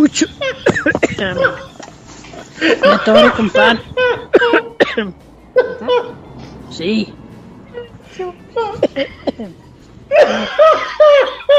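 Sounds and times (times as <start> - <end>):
laughter: 0.0 - 4.7, 7.8 - 11.5
speech: 0.1 - 0.4, 1.2 - 1.7, 2.6 - 7.2, 8.2 - 11.5
person coughing: 0.4 - 1.7, 2.6 - 5.1, 8.6 - 11.5.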